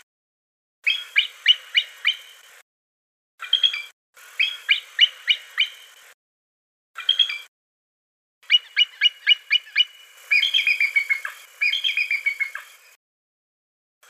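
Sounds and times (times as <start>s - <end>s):
bald eagle calling: 0.9s - 2.3s, 4.4s - 5.9s, 8.4s - 12.8s.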